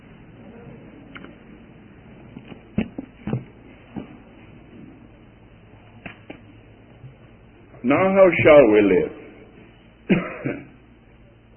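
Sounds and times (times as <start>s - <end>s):
speech: 7.9s - 9.2s
person coughing: 10.1s - 10.8s.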